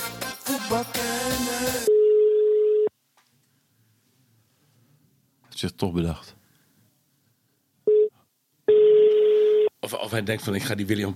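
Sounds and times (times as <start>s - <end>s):
music: 0.0s - 1.9s
speech: 0.7s - 1.9s, 5.6s - 6.4s, 9.8s - 11.1s
telephone busy tone from a call that fails to connect: 1.9s - 2.9s, 7.9s - 8.1s, 8.7s - 9.7s.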